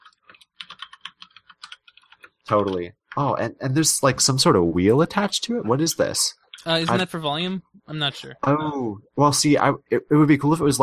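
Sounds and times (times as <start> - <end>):
typing on a mechanical keyboard with brown switches: 0.0 - 2.9
speech: 2.5 - 10.8.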